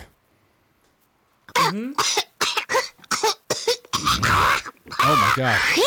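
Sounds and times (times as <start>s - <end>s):
harsh throat-clearing bursts: 1.5s - 5.2s
speech: 5.4s - 5.8s.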